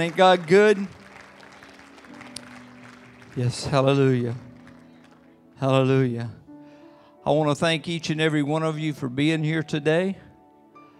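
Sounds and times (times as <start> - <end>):
speech: 0.0 - 1.0, 3.4 - 4.5, 5.6 - 6.4, 7.2 - 10.2
audience applauding: 0.0 - 5.5.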